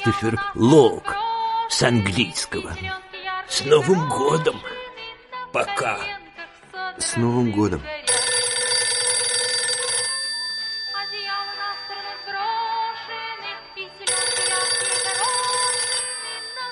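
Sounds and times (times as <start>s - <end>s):
speech: 0.0s - 4.7s, 5.5s - 6.2s, 7.0s - 8.0s
telephone ringing: 8.0s - 16.7s.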